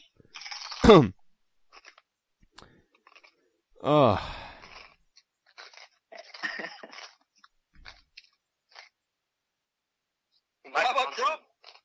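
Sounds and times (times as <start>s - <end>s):
speech: 0.9s - 1.2s, 3.9s - 4.4s
crunching and chewing food while eating: 1.7s - 3.7s, 4.3s - 9.1s, 11.5s - 11.8s.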